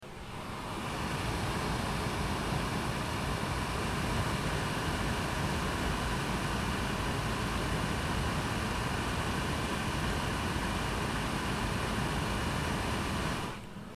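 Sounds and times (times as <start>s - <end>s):
cooker hood fan: 0.0s - 13.9s.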